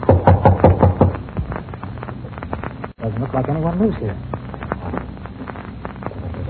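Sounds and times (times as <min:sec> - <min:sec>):
knocking on a wooden door of a dilapidated place: 0:00.1 - 0:01.2
speech: 0:03.8 - 0:04.3.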